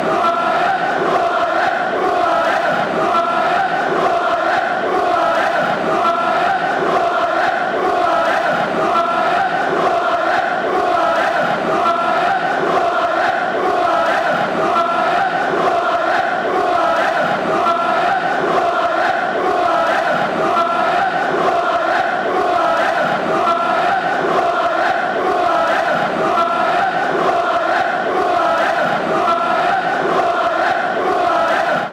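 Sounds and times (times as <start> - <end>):
football fans chanting: 0.0 - 31.9.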